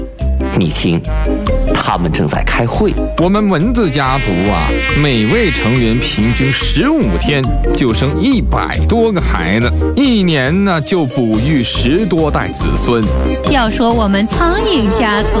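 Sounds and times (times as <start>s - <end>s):
speech: 0.6s - 15.3s
mosquitoes and flies buzzing: 3.9s - 6.7s.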